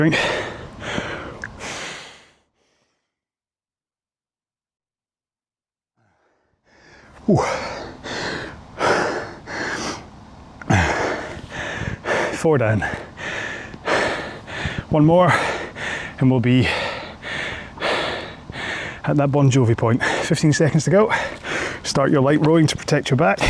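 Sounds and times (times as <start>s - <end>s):
speech: 0.0s - 0.4s, 7.3s - 7.6s, 12.4s - 13.1s, 14.9s - 15.5s, 16.2s - 16.8s, 19.1s - 23.4s
heavy labored breathing after exercise: 0.0s - 3.2s, 6.0s - 19.2s, 19.9s - 22.0s.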